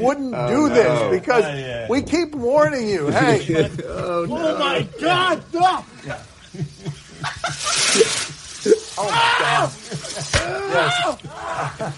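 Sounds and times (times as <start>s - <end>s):
speech: 0.0s - 6.6s, 9.0s - 11.9s
laughter: 3.0s - 11.9s
firecracker explosion: 7.2s - 10.7s
several people screaming and yelping in terror: 8.8s - 11.9s.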